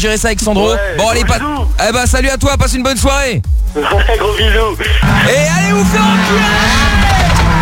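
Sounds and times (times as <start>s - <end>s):
speech: 0.0s - 7.2s
voice imitating a car engine revving: 3.8s - 7.5s.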